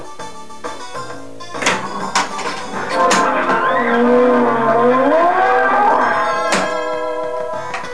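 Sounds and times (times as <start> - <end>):
pinball machine game start sound: 1.6 - 7.9.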